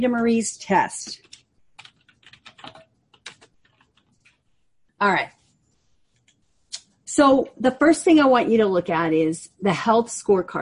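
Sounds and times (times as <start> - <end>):
speech: 0.0 - 1.3, 5.0 - 5.4, 7.2 - 10.5
typing on a computer keyboard: 1.0 - 4.5.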